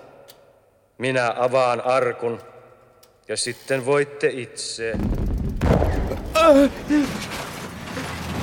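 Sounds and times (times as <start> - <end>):
speech: 1.0 - 2.5, 3.3 - 5.1, 6.4 - 7.4
heavy explosion inside concrete mausoleum vaults: 5.0 - 7.3
lingering rumble echoing through an enclosed space: 5.0 - 8.3
person crying out: 6.0 - 7.3.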